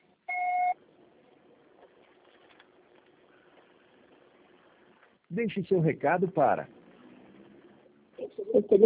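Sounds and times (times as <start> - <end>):
quiet hiss: 0.0 - 8.8
voicemail beep electronic tone: 0.3 - 0.8
speech: 5.3 - 6.8, 8.6 - 8.8.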